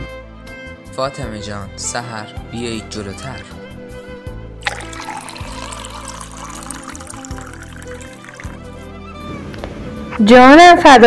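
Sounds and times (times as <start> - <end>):
speech: 1.0 - 3.6, 10.2 - 11.0
water pouring: 4.6 - 8.8.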